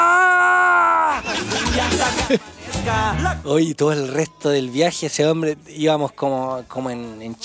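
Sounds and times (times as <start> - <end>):
man imitating a scream of pain: 0.0 - 2.3
laughter: 1.1 - 3.4
speech: 1.8 - 7.4.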